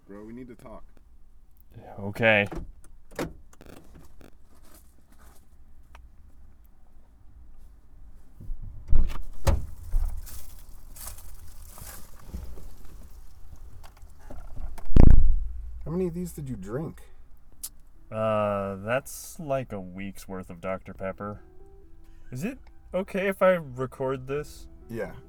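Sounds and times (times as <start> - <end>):
speech: 0.1 - 1.0, 1.7 - 3.3, 16.0 - 17.1, 18.1 - 21.5, 22.3 - 25.2
car door pulled open with clunks and shuffling: 2.3 - 4.2, 8.4 - 10.3
car door unlocking clicks and rattles: 2.4 - 4.4
solid thump: 8.4 - 10.4, 14.5 - 15.9.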